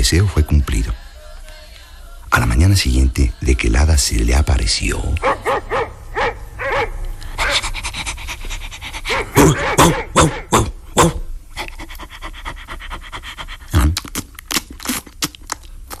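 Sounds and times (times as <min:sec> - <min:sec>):
speech: 0:00.0 - 0:00.6, 0:02.6 - 0:05.9, 0:09.4 - 0:10.4
large dog barking: 0:05.2 - 0:07.6, 0:09.1 - 0:11.2
large dog panting: 0:07.3 - 0:10.5, 0:11.6 - 0:13.7.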